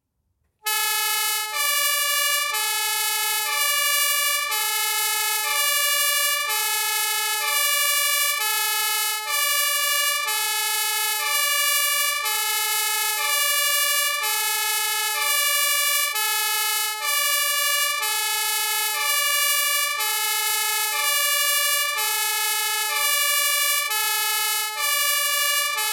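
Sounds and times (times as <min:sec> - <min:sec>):
long emergency vehicle siren: 0:00.6 - 0:25.9.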